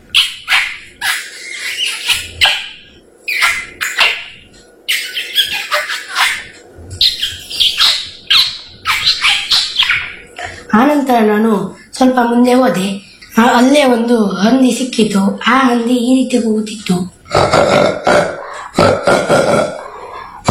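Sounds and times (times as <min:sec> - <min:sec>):
parrot squawking: 0:00.0 - 0:10.3, 0:18.2 - 0:18.8, 0:19.6 - 0:20.4
speech: 0:10.8 - 0:18.2.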